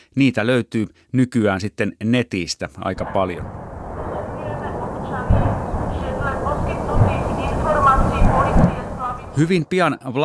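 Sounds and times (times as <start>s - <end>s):
speech: 0.1s - 3.6s, 9.4s - 10.2s
constant low rumble: 3.0s - 9.5s
deep booms of explosions at an ammunition depot: 3.0s - 9.5s
faint voices murmuring: 4.1s - 9.4s.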